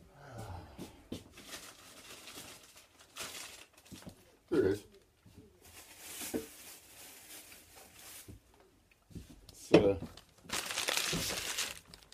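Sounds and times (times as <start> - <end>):
paper bag full of stuff crinkling as it's handled: 1.3 - 4.0, 5.7 - 8.4, 10.1 - 12.1
speech: 4.5 - 4.9.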